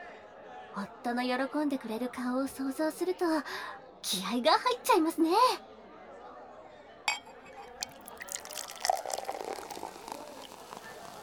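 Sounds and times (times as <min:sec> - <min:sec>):
speech: 0:00.8 - 0:05.7
drink poured into a glass: 0:07.1 - 0:11.2.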